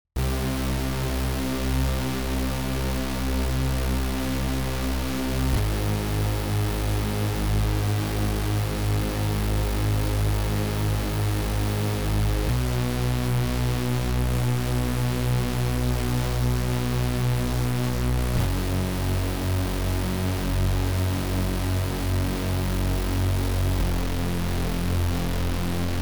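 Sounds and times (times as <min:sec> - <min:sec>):
bass synth: 0:00.2 - 0:26.0.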